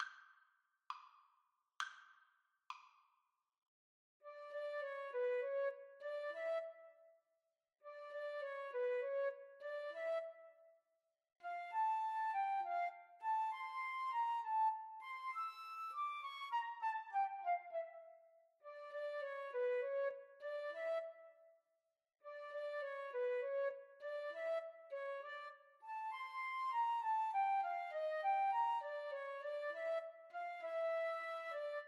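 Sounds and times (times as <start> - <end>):
flute duet: 4.3 - 7.1, 7.9 - 10.7, 11.4 - 21.5, 22.3 - 31.8.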